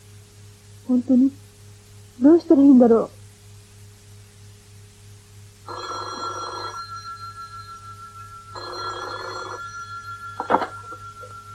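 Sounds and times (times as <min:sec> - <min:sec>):
speech: 0:00.9 - 0:01.4, 0:02.2 - 0:03.2
telephone ringing: 0:05.7 - 0:11.5.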